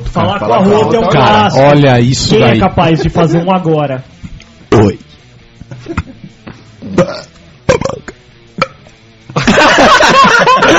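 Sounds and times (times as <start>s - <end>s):
speech: 0.1s - 5.0s
short throaty sounds and clicks: 4.2s - 9.4s
laughter: 5.7s - 6.4s, 9.3s - 10.7s
loud drawn-out forced burp: 6.8s - 8.8s.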